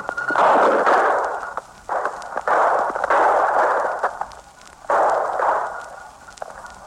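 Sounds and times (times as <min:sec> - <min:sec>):
thick hissing broadcast static: 0:00.0 - 0:06.8
police gunfire during a shootout: 0:00.4 - 0:04.2, 0:04.9 - 0:06.0.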